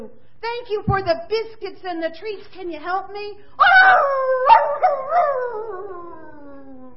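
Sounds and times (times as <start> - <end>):
speech: 0.0 - 6.4
dog howling with yelps: 3.6 - 6.9.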